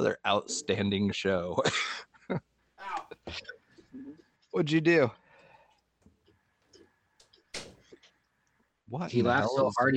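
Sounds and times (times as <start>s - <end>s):
speech: 0.0s - 2.5s, 3.2s - 5.2s, 8.9s - 9.9s
door shutting with a solid thud: 7.5s - 7.9s.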